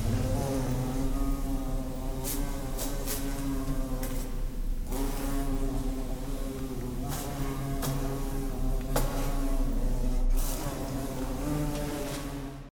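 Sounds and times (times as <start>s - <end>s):
bumblebee buzzing: 0.0s - 12.6s.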